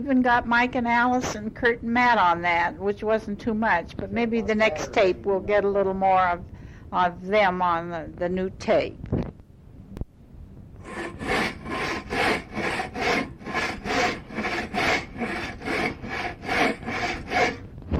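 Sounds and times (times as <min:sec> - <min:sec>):
speech: 0:00.0 - 0:09.1
handsaw sawing old barn wood in the country: 0:10.8 - 0:17.7.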